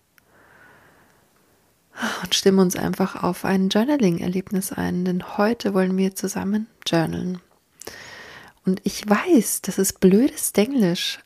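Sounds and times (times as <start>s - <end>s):
long airy breath drawn deep into the belly: 0.2s - 1.3s, 7.8s - 8.6s
speech: 2.2s - 8.0s, 8.6s - 11.2s.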